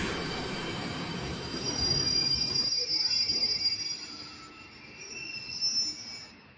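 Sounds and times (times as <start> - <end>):
tram wheels squealing as it brakes at a station platform: 0.0 - 6.5.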